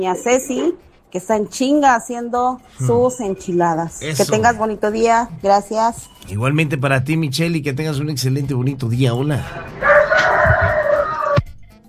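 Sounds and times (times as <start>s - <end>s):
speech: 0.0s - 10.3s
rooster crowing: 9.5s - 11.4s.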